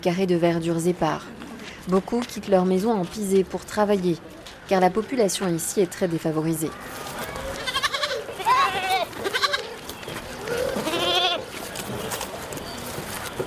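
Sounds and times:
speech: 0:00.0 - 0:07.4
faint outdoor noise: 0:00.0 - 0:13.4
goats from a family herd bleating in the Margala hills: 0:07.3 - 0:09.8, 0:10.5 - 0:11.5.

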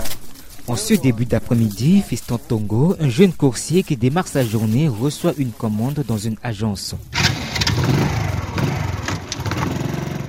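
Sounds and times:
speech: 0:00.7 - 0:08.0
small motorcycle engine starting and idling: 0:07.1 - 0:10.2.

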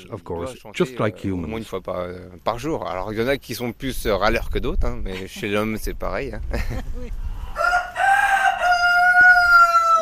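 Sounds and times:
speech: 0:00.0 - 0:07.3
rooster crowing: 0:07.5 - 0:10.0.

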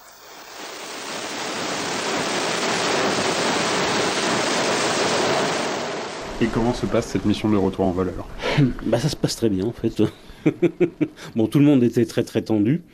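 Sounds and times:
rocket engines roaring at liftoff: 0:00.0 - 0:08.3
speech: 0:06.4 - 0:12.9
laughter: 0:10.3 - 0:11.3.

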